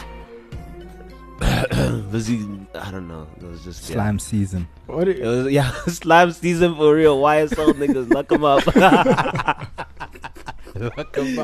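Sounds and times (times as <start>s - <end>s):
person clearing throat with a harsh guttural rasp: 1.4s - 2.2s
speech: 1.7s - 9.9s, 10.8s - 11.4s
laughter: 7.4s - 11.4s.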